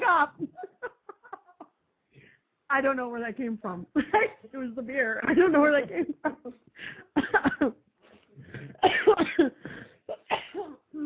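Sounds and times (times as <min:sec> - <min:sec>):
speech: 0:02.7 - 0:07.0
coughing fit: 0:08.5 - 0:11.0.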